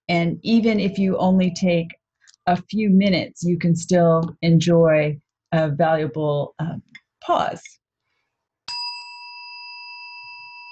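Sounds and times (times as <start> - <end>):
speech: 0.1 - 7.8
meditation tone struck once: 8.7 - 10.7.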